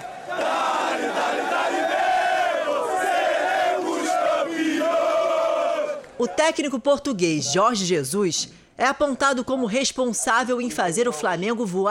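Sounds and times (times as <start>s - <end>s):
large crowd of football fans chanting and singing in unison outside a stadium: 0.0s - 6.5s
speech: 6.2s - 11.8s.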